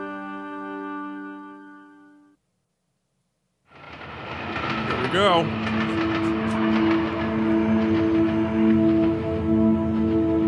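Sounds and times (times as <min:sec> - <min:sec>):
train rumbling past: 0:03.7 - 0:10.4
speech: 0:05.1 - 0:05.9.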